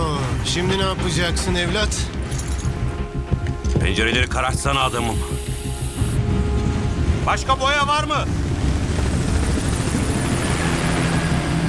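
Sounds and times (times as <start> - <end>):
speech: 0.4 - 2.2, 3.8 - 5.4, 7.3 - 8.4
helicopter rotor roar: 2.6 - 11.6.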